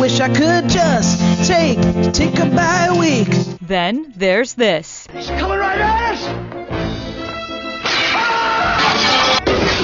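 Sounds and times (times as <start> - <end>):
speech: 0.1 - 6.4
glass window pane shattering: 7.8 - 9.8.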